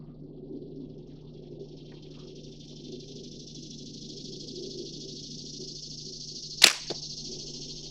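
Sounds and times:
steady hiss: 0.4s - 7.8s
arrow shot from a bow at a target: 6.6s - 7.0s.

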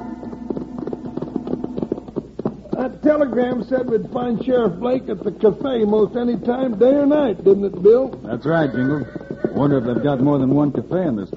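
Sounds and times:
horses' hooves clip-clopping as two riders come into a small cow town: 0.0s - 11.3s
speech: 2.8s - 11.3s.

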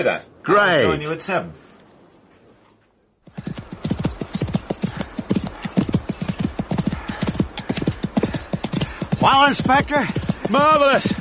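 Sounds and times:
speech: 0.0s - 1.6s, 9.2s - 11.2s
ridden horse hooves clip-clopping at speed: 3.2s - 11.2s.

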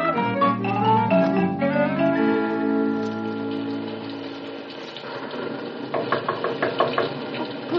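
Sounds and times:
sustained tonal music-like sound: 0.0s - 4.7s
sharp loud knocks on a door: 5.9s - 7.2s.

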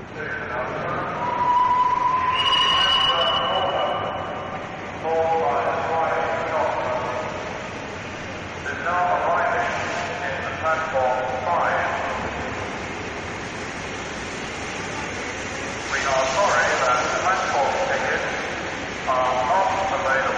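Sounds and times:
speech: 0.2s - 0.4s
locomotive whistle at a railway station: 1.0s - 4.6s
locomotive rumbling and hissing at a railway station: 4.7s - 20.3s.

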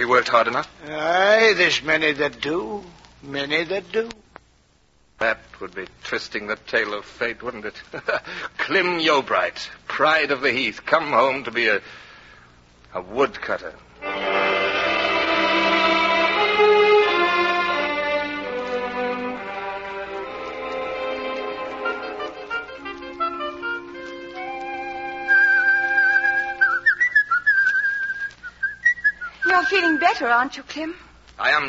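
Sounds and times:
speech: 0.0s - 4.2s, 5.2s - 12.1s, 12.9s - 14.4s, 29.7s - 31.6s
soft sustained musical backing: 14.0s - 28.4s
person whistling a wavering melody: 23.3s - 30.2s.

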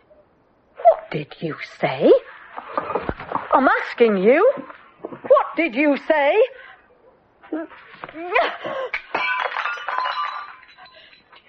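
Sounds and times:
speech: 1.1s - 2.3s, 3.6s - 4.8s, 5.6s - 6.6s, 7.5s - 9.0s
ceramic shards ringing and tinkling as they settle: 8.4s - 11.4s
ceramic teapot smashing: 8.4s - 11.4s.

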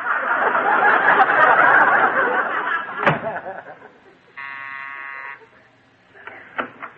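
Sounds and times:
crowd laughter: 0.0s - 4.4s
door shutting thud: 3.0s - 3.4s
buzzing doorbell ring: 4.4s - 5.4s.

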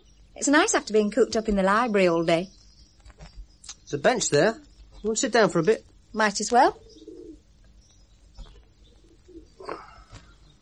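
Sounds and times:
faint outdoor ambience: 0.0s - 10.6s
speech: 0.4s - 2.6s, 3.9s - 6.8s
pigeon wings fluttering: 2.5s - 10.6s
pigeons cooing: 4.0s - 10.6s.

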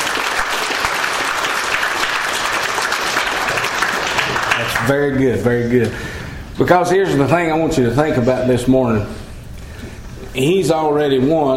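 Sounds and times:
large audience applauding: 0.0s - 5.3s
speech: 4.9s - 9.2s, 10.4s - 11.5s.

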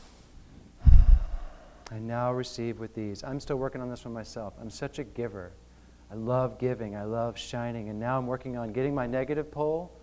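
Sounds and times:
deep breath drawn in during a guided affirmation exercise: 0.8s - 1.9s
speech: 1.9s - 10.0s.

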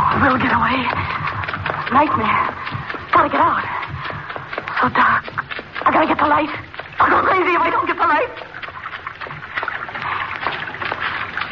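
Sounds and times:
water sloshing and splashing in an enclosed sewer channel: 0.0s - 11.5s
speech: 0.2s - 1.2s, 1.9s - 3.8s, 4.8s - 8.5s.

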